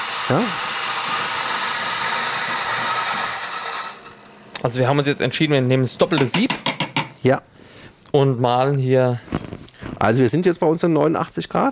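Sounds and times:
steam and water rushing from an espresso machine's cooling flush: 0.0 - 6.4
speech: 0.3 - 0.7, 4.6 - 7.5, 8.1 - 9.3, 10.0 - 11.7.

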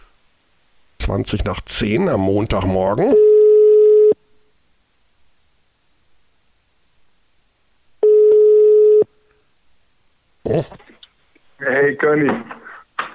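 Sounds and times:
speech: 1.1 - 3.3, 10.5 - 10.8, 11.9 - 12.6
ringback tone of an outgoing phone call to Norway: 3.2 - 4.2, 8.0 - 9.1.

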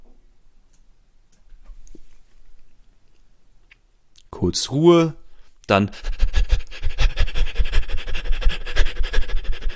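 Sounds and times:
speech: 4.4 - 6.2
rapid panting breaths as a diaphragm breathing exercise: 5.8 - 9.7.

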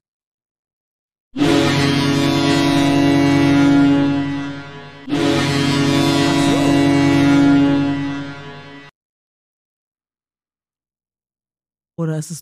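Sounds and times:
deep ship horn blasts on the Weser river: 1.4 - 8.9.

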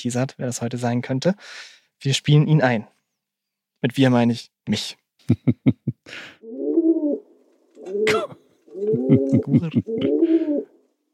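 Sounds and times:
speech: 0.0 - 3.0, 3.8 - 6.7, 7.8 - 10.7
laughter: 5.2 - 6.0, 8.9 - 10.2
rock dove cooing in a boxy space: 6.4 - 7.2, 7.8 - 10.8.

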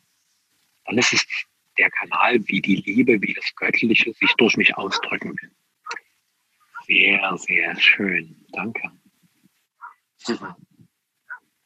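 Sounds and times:
speech: 0.9 - 6.0, 6.9 - 9.0, 10.2 - 10.7
dog barking: 4.2 - 5.2.

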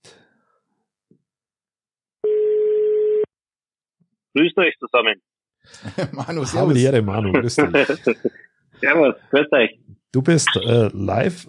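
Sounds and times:
telephone ringback tone while calling: 2.2 - 3.3
speech: 4.4 - 11.4
laughter: 5.7 - 8.4.

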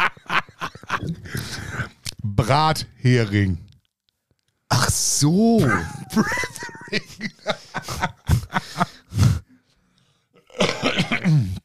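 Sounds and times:
laughter: 0.0 - 1.2, 5.6 - 9.1
speech: 2.4 - 3.7, 5.2 - 7.4
person coughing harshly: 5.6 - 6.8, 10.5 - 11.6
throat clearing: 10.5 - 11.6.

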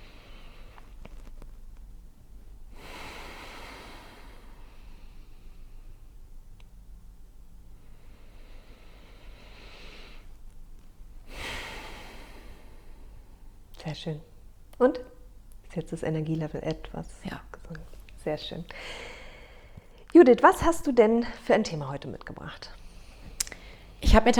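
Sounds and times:
low hum: 0.0 - 24.3
slow deep breathing in and out during a calming breathing exercise: 2.7 - 6.3, 7.6 - 13.7, 18.6 - 20.1
speech: 13.9 - 15.1, 15.7 - 19.1, 20.1 - 22.8, 24.0 - 24.3.

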